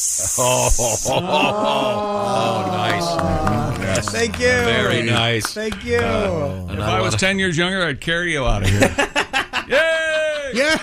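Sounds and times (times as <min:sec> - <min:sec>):
voice imitating a snake's hiss: 0:00.0 - 0:01.2
speech: 0:00.0 - 0:03.4, 0:04.0 - 0:09.8, 0:10.5 - 0:10.8
people laughing: 0:00.3 - 0:07.4, 0:08.5 - 0:10.8.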